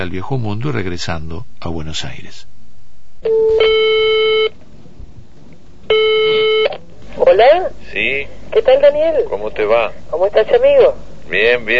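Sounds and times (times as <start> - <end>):
speech: 0.0 - 2.5, 3.2 - 3.8, 7.4 - 11.7
faint hiss: 0.0 - 11.7
electronic telephone line tones during a phone call: 3.2 - 4.6, 5.9 - 6.8.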